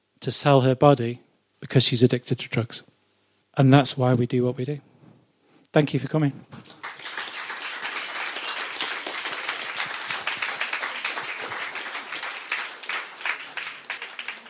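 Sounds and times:
speech: 0.2 - 2.9, 3.6 - 4.9, 5.7 - 6.8
crowd applause: 6.6 - 14.4.

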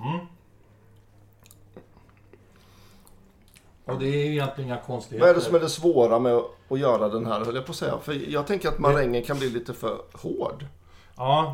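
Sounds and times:
person chewing a dessert with lip smacks: 0.9 - 3.8
speech: 3.9 - 11.5.

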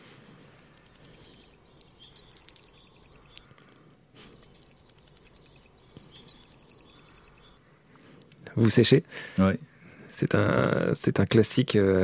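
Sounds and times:
blue tit singing: 0.0 - 3.5, 4.2 - 7.6
speech: 8.6 - 12.0.

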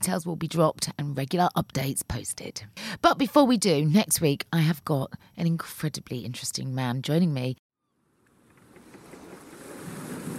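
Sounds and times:
speech: 0.0 - 7.6
breezy wind at a marina: 7.8 - 10.3
waves washing at a marina: 8.7 - 10.3.

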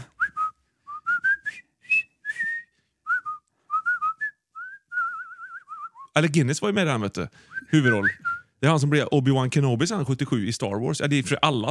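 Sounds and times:
person whistling a march melody: 0.0 - 6.1, 7.5 - 8.6
speech: 6.2 - 11.6.

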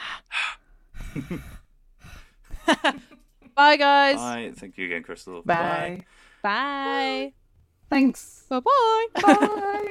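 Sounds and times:
breathing into microphone: 0.0 - 2.5
speech: 1.2 - 1.6, 2.7 - 9.8
laughter: 2.5 - 3.6, 9.2 - 9.8.

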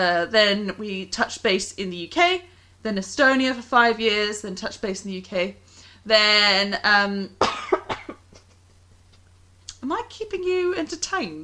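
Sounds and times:
speech: 0.0 - 7.6, 9.8 - 11.4
person coughing from a tickle in the throat: 7.4 - 8.5.

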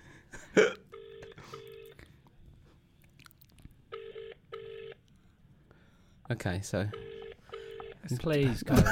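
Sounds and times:
phone ringback tone over a tinny loudspeaker: 0.9 - 2.0, 3.9 - 5.0, 6.9 - 8.0
speech: 6.3 - 7.0, 8.1 - 8.9.

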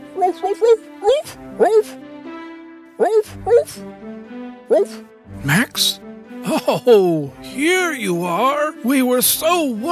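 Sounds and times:
person imitating a dog barking in greeting with yappy rising barks: 0.2 - 2.0, 3.0 - 3.8, 4.7 - 5.0
speech: 0.2 - 2.1, 3.0 - 9.9.

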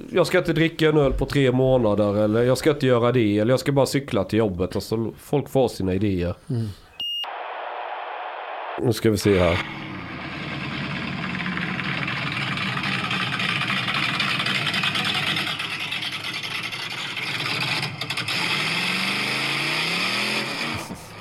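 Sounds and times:
speech: 0.1 - 6.8, 8.8 - 9.9
self-built car engine running: 9.5 - 21.2.

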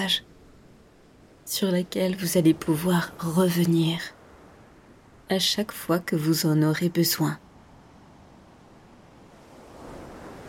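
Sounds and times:
speech: 0.0 - 0.3, 1.5 - 4.2, 5.3 - 7.4
ocean surf breaking on a beach: 0.0 - 10.4.

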